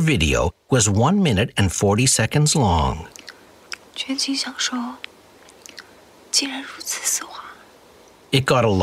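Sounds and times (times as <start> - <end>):
speech: 0.0 - 3.2, 4.0 - 5.1, 6.3 - 7.4, 8.3 - 8.8
biting and chewing a chocolate bar: 3.1 - 3.9.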